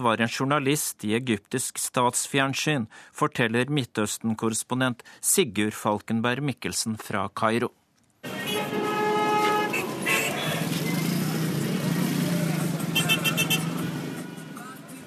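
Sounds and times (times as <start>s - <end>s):
speech: 0.0s - 7.8s
car horns honking: 8.2s - 14.4s
dense city traffic rumbling along the Nile in Cairo Egypt: 8.2s - 15.0s.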